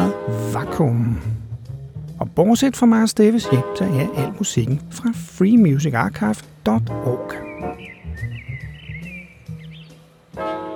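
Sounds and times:
speech: 0.6s - 1.4s, 2.3s - 7.4s
blackbirds singing on a warm summer evening: 5.6s - 10.2s.

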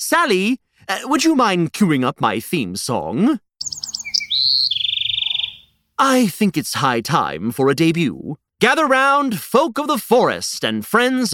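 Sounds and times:
speech: 0.0s - 3.4s, 4.4s - 4.8s, 6.0s - 11.3s
birds chirping and trilling: 3.6s - 5.8s.

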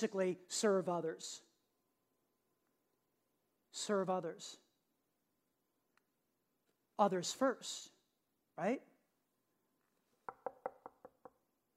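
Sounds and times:
speech: 0.0s - 1.5s, 3.7s - 4.6s, 7.0s - 8.0s, 8.6s - 8.9s
firm knocks on a wooden door: 10.3s - 11.4s.

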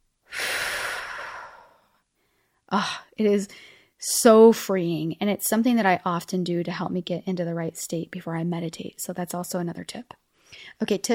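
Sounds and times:
person taking a deep breath and exhaling: 0.3s - 2.4s
speech: 2.7s - 11.1s.

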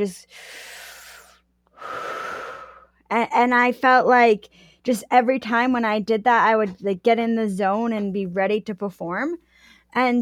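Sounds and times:
speech: 0.0s - 0.8s, 3.1s - 10.2s
slow deep breathing before dropping in for a competitive run: 0.3s - 3.0s.

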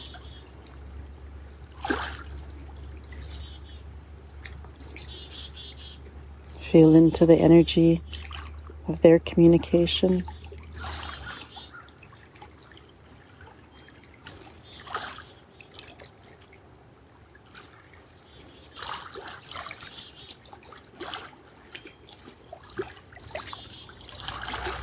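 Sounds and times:
water trickling and splashing with bursts of bubbling: 0.0s - 24.8s
speech: 6.7s - 8.3s, 8.9s - 10.4s.

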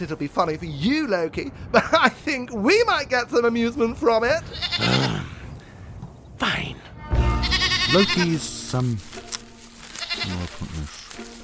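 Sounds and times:
speech: 0.0s - 5.3s, 7.9s - 9.2s, 10.2s - 11.3s
goat tied by rope bleating: 4.5s - 5.4s, 7.1s - 8.4s, 9.9s - 10.8s.

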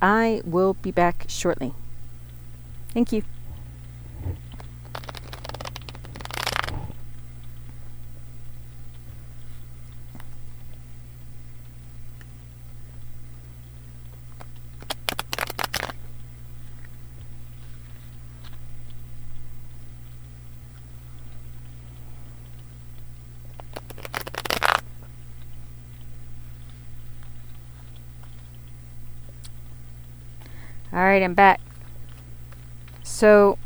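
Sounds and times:
speech: 0.0s - 1.8s, 2.9s - 3.4s, 31.1s - 31.6s, 33.2s - 33.6s
low steady hum: 0.0s - 33.6s
deck of tarot cards being shuffled: 4.6s - 7.0s, 14.8s - 16.1s, 23.6s - 24.9s.

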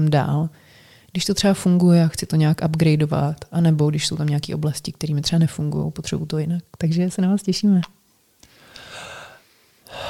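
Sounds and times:
speech: 0.0s - 8.0s
breathy breathing during a breathwork exercise: 0.6s - 1.1s, 8.4s - 10.0s.

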